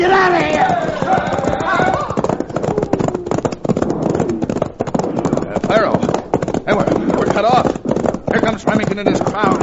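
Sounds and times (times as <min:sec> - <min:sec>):
men shouting: 0:00.0 - 0:02.3
horses galloping: 0:00.0 - 0:09.6
speech: 0:09.0 - 0:09.4.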